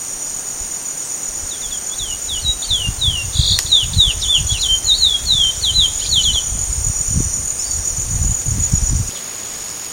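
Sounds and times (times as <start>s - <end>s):
steady high hiss: 0.0s - 9.9s
Chestnut-bellied seed finch song in Sertão, Mongaguá, São Paulo, Brazil: 1.5s - 9.2s.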